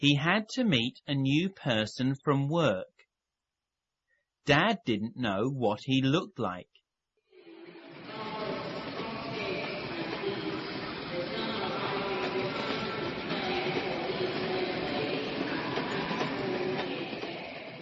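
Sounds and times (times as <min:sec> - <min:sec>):
speech: 0:00.0 - 0:02.9, 0:04.5 - 0:06.7
train arriving at a station rumbling and clattering: 0:08.0 - 0:17.8.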